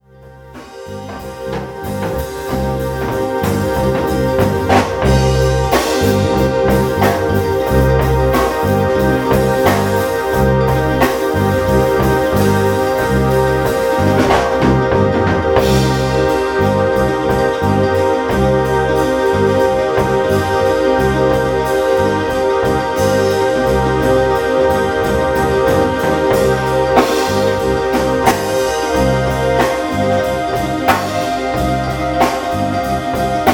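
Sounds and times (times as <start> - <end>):
drum song: 0.0 - 33.5.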